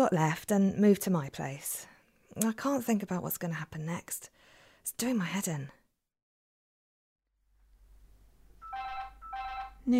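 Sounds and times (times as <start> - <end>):
speech: 0.0 - 5.8
telephone ringing: 8.6 - 9.9.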